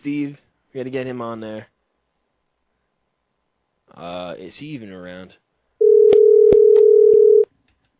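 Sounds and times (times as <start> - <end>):
speech: 0.0 - 1.7, 3.9 - 5.4
Skype outgoing call electronic ringing tone hum: 5.8 - 7.5.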